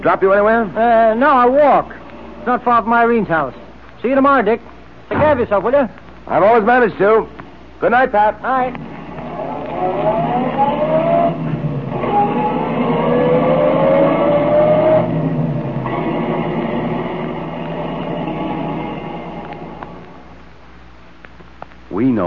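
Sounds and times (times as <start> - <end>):
speech: 0.0 - 8.9, 9.8 - 10.2, 22.1 - 22.2
car engine revving and pulling away through gear shifts: 8.9 - 20.2.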